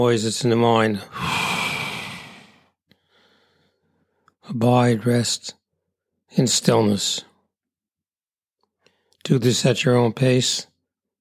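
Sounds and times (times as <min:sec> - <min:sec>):
speech: 0:00.0 - 0:01.6, 0:04.6 - 0:05.6, 0:06.3 - 0:07.3, 0:09.3 - 0:10.7
deep breath blown out during a guided breathing exercise: 0:01.0 - 0:03.8.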